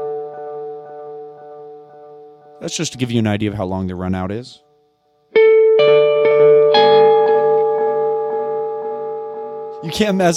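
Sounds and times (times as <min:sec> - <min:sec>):
speech: 0:02.6 - 0:04.6, 0:09.8 - 0:10.3
sharp plucked guitar notes with long delay and reverb: 0:05.3 - 0:10.3.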